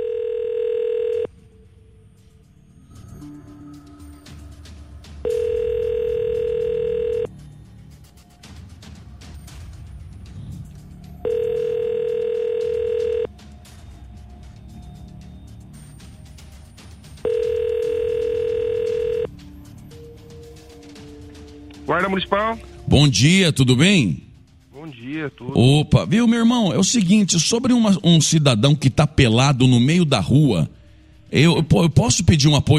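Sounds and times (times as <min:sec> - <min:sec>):
telephone dial tone while placing a call to the municipal guard: 0:00.0 - 0:01.3, 0:05.3 - 0:07.3, 0:11.3 - 0:13.3, 0:17.3 - 0:19.3
speech: 0:22.1 - 0:24.3, 0:25.3 - 0:32.7.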